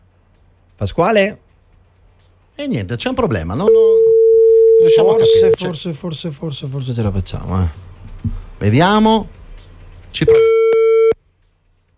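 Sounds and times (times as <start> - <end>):
speech: 0.8 - 1.4, 2.6 - 4.0, 4.8 - 9.4, 10.1 - 10.5
telephone busy tone on failed call: 3.6 - 5.6, 10.3 - 11.2.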